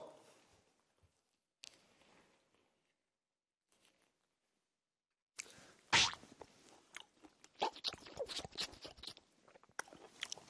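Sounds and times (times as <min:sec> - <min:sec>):
man chewing a juicy tangerine segment: 0:06.4 - 0:10.4.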